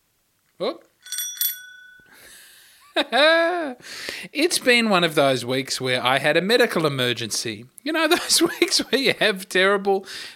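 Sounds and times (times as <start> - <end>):
speech: 0.6 - 1.2, 3.0 - 10.3
small hand bell struck: 1.0 - 2.2.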